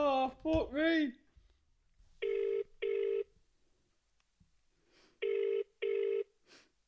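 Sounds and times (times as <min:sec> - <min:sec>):
speech: 0:00.3 - 0:01.2
outgoing call ringback tone: 0:02.2 - 0:03.3, 0:05.2 - 0:06.3.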